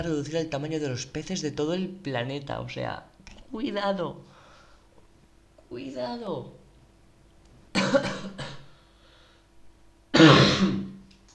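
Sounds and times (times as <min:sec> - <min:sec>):
speech: 0:00.0 - 0:04.3, 0:05.7 - 0:06.6, 0:07.8 - 0:08.4
rough coughing: 0:07.7 - 0:08.7, 0:10.1 - 0:11.0
loud throat clearing: 0:10.2 - 0:11.0.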